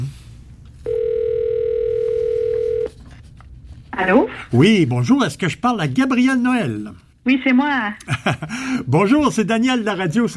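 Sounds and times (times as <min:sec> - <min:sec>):
faint hum: 0:00.0 - 0:10.3
telephone ringing during a radio contest call: 0:00.8 - 0:02.9
speech: 0:04.0 - 0:10.3.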